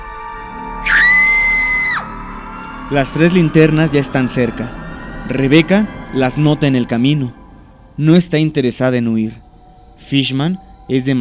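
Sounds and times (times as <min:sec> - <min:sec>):
frightened woman screaming for help: 0:00.8 - 0:02.1
speech: 0:02.9 - 0:07.4, 0:08.0 - 0:09.4, 0:10.0 - 0:11.2.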